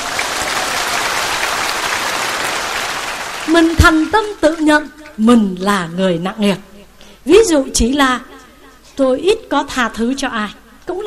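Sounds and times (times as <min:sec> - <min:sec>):
audience applause at a monk's talk: 0:00.0 - 0:03.6
speech: 0:03.5 - 0:08.3, 0:09.0 - 0:11.0.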